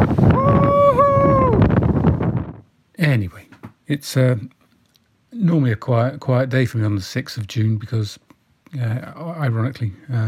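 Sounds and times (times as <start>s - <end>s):
strong wind outdoors buffeting the microphone: 0.0s - 2.7s
speech: 3.0s - 4.6s, 5.3s - 10.2s.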